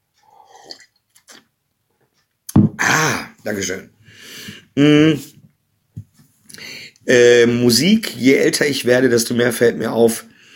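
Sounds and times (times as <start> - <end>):
person taking a sip of a drink and swallowing: 0.2 - 1.5
speech: 3.0 - 4.0, 4.8 - 5.3, 7.1 - 10.3
faint breathing: 4.0 - 4.8, 6.5 - 7.0, 10.3 - 10.5.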